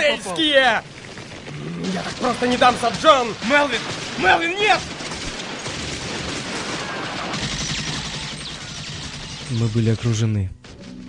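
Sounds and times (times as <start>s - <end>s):
speech: 0.1s - 1.0s, 1.7s - 5.0s, 9.5s - 10.6s
dense continuous gunfire barrage: 0.8s - 9.9s
bullets whistling overhead: 6.5s - 9.8s.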